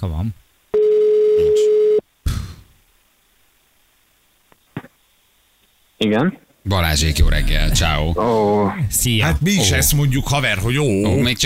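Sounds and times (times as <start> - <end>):
speech: 0.0 - 0.5, 6.0 - 11.4
telephone ringing tone during call: 0.7 - 2.0.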